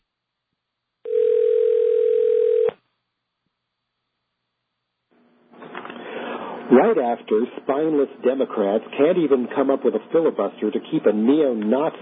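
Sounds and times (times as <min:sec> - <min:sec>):
loud steady telephone tone: 0:01.1 - 0:02.8
speech: 0:06.7 - 0:11.9.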